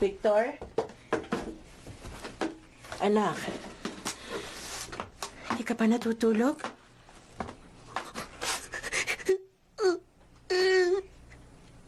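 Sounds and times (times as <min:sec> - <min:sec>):
speech: 0:00.0 - 0:00.8, 0:03.0 - 0:03.6, 0:05.6 - 0:06.8
child crying softly with sniffles and whimpers: 0:09.2 - 0:11.1.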